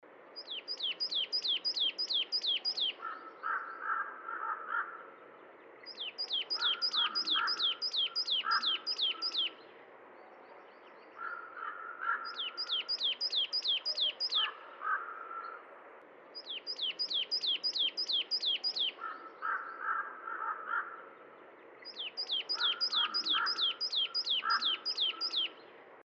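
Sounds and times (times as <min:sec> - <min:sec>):
coal tit in Valsolda: 0:00.4 - 0:03.7, 0:05.9 - 0:09.6, 0:12.1 - 0:15.0, 0:16.4 - 0:19.7, 0:21.8 - 0:25.6
common raven in Valsolda: 0:01.5 - 0:05.2, 0:06.3 - 0:09.6, 0:11.2 - 0:15.8, 0:16.8 - 0:21.2, 0:22.0 - 0:25.6.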